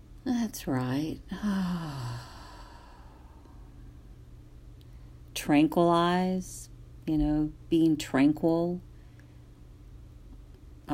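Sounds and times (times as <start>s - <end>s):
speech: 0.2s - 2.3s, 5.4s - 8.9s
slow deep exhale during a breathing exercise: 1.3s - 3.7s.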